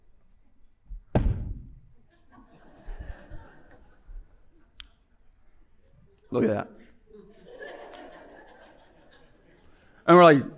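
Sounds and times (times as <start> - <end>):
sharp heavy thump of chairs: 1.0 - 1.8
laughter: 2.0 - 4.8, 6.8 - 10.0
speech: 6.3 - 6.8, 10.1 - 10.5.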